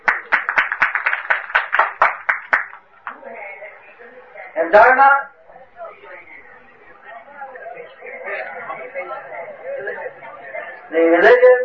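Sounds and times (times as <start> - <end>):
loud audience applause: 0.0 - 3.2
murmur of voices: 2.8 - 11.6
speech: 4.6 - 5.3, 10.9 - 11.6.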